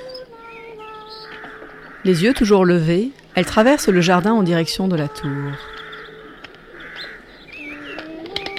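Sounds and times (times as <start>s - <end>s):
bird chirps and clicks: 0.0s - 2.0s, 5.6s - 8.5s
steady outdoor hum: 0.0s - 8.5s
white doves cooing: 0.0s - 8.5s
speech: 2.0s - 5.7s.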